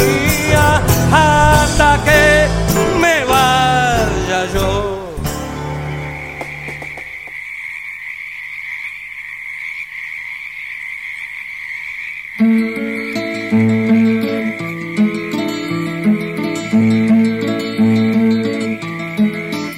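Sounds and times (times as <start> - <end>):
instrumental music: 0.0 - 7.2, 12.4 - 19.7
crickets chirping at dusk: 5.4 - 19.7
frogs croaking at dusk: 5.5 - 19.7.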